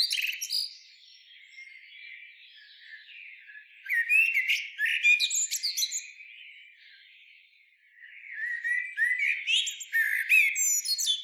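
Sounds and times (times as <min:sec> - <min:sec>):
common blackbird Turdus merula twittering and warbling: 0:00.0 - 0:00.8, 0:02.6 - 0:06.2, 0:08.0 - 0:11.2.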